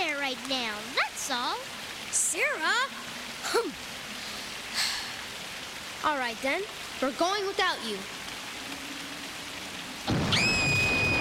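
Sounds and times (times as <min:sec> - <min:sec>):
steady rain: 0:00.0 - 0:11.1
speech: 0:00.3 - 0:04.0, 0:06.0 - 0:08.2
thunder crash during rainstorm: 0:10.1 - 0:11.1.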